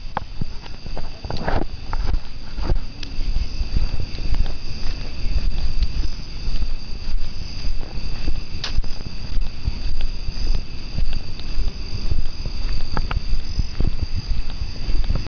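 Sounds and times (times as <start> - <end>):
cricket chirping: 0.0 - 15.3
footsteps: 0.0 - 15.3.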